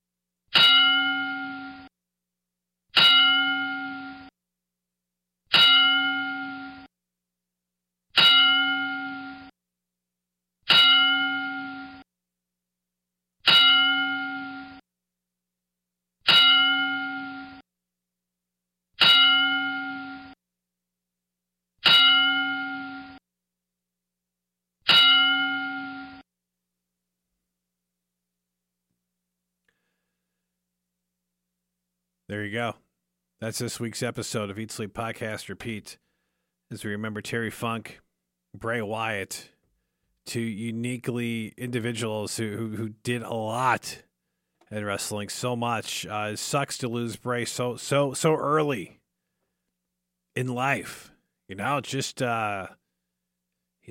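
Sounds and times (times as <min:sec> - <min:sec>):
bell struck as a salute tribute: 0:00.6 - 0:01.9, 0:03.0 - 0:04.3, 0:05.5 - 0:06.9, 0:08.2 - 0:09.5, 0:10.7 - 0:12.0, 0:13.5 - 0:14.8, 0:16.3 - 0:17.6, 0:19.0 - 0:20.4, 0:21.8 - 0:23.2, 0:24.9 - 0:26.2
speech: 0:32.3 - 0:32.8, 0:33.4 - 0:36.0, 0:36.7 - 0:39.5, 0:40.2 - 0:44.1, 0:44.7 - 0:49.0, 0:50.4 - 0:52.8.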